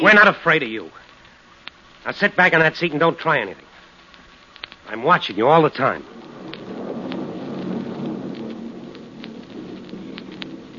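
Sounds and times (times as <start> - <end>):
speech: 0.0 - 1.1, 2.0 - 3.7, 4.9 - 6.6
steady rain hissing: 0.0 - 10.7
low continuous rumble of thunder: 5.4 - 10.7.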